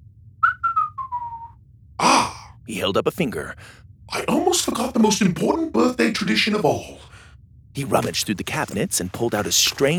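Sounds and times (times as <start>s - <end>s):
low steady hum: 0.0s - 9.9s
man whistling a short clear tune: 0.4s - 1.6s
speech: 2.7s - 7.2s, 7.8s - 9.9s.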